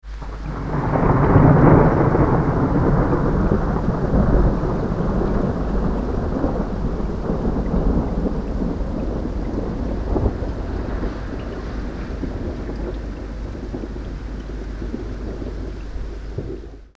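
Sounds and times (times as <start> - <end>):
thunder: 0.0 - 16.9.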